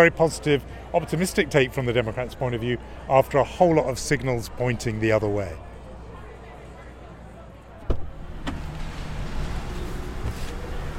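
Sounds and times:
speech: 0:00.0 - 0:05.7
rental car door shutting with a heavy thump: 0:07.9 - 0:10.7.

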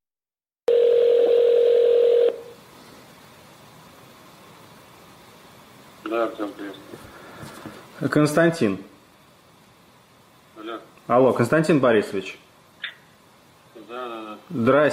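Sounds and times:
person answering a telephone call: 0:00.7 - 0:02.4
telephone ringback tone over a telephone line: 0:00.7 - 0:02.5
faint telephone line hiss: 0:01.6 - 0:14.9
speech: 0:06.1 - 0:08.9, 0:11.1 - 0:12.4, 0:13.9 - 0:14.9.

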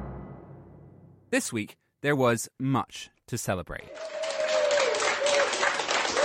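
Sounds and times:
speech: 0:01.3 - 0:04.2
hospital staff clapping: 0:03.9 - 0:06.2.

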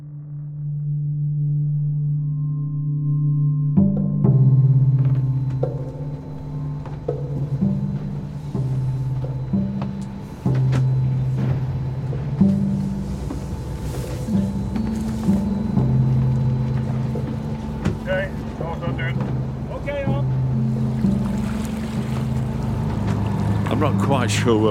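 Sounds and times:
boat engine droning in heavy ocean swell: 0:00.0 - 0:24.6
wind: 0:05.0 - 0:24.6
ocean waves washing: 0:07.6 - 0:24.6
speech: 0:24.2 - 0:24.6.

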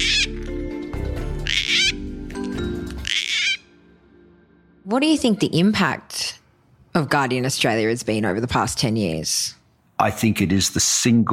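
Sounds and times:
gang-gang cockatoo calls: 0:00.0 - 0:00.6, 0:01.4 - 0:03.8
speech: 0:04.9 - 0:06.2, 0:06.9 - 0:11.3.

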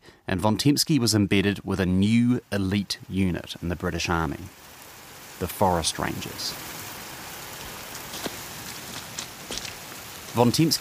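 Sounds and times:
speech: 0:00.3 - 0:04.7, 0:05.4 - 0:06.8, 0:10.3 - 0:10.7
steady dense driving rain: 0:00.4 - 0:10.7
sharp rain drops pattering against a surface: 0:07.6 - 0:10.5.

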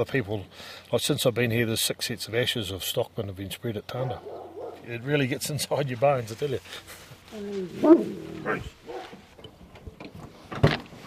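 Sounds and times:
speech: 0:00.0 - 0:08.8
dog barking: 0:04.0 - 0:04.9, 0:07.9 - 0:09.2.

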